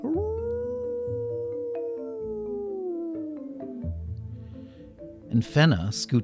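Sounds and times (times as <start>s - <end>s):
long mournful wolf howl in a dark forest: 0.0s - 4.0s
speech: 5.3s - 6.2s.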